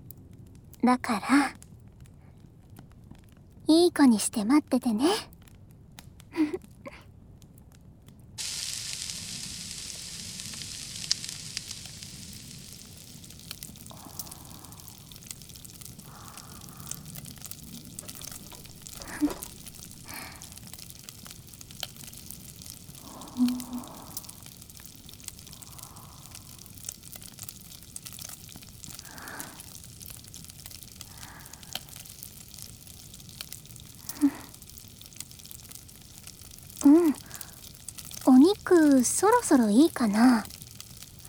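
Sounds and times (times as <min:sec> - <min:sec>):
soft pops and crackles of grilling food: 0:00.0 - 0:04.4, 0:05.0 - 0:41.2
speech: 0:00.8 - 0:01.6, 0:03.7 - 0:05.3, 0:06.4 - 0:06.7, 0:39.0 - 0:40.5
food and vegetables sizzling while grilling: 0:08.4 - 0:41.2.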